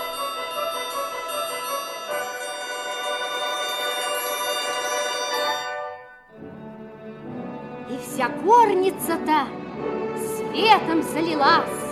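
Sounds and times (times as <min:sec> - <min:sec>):
silvery bell-like chime ringing: 0:00.0 - 0:06.4
speech: 0:08.2 - 0:09.9, 0:10.5 - 0:11.8.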